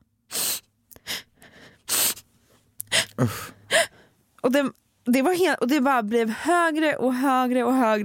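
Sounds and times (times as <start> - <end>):
voice imitating loud sobbing: 2.8 - 3.9
speech: 3.2 - 3.6, 4.4 - 8.0.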